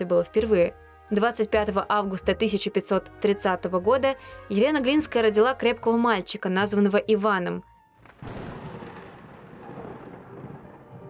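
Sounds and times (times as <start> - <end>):
speech: 0.0 - 8.4
thunder crack and rumble: 8.0 - 11.0.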